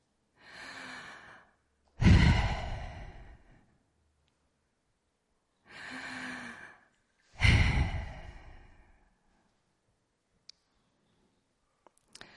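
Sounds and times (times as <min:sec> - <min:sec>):
slow deliberate inhaling and exhaling breaths: 0:00.4 - 0:03.8, 0:05.6 - 0:09.4, 0:12.2 - 0:12.3.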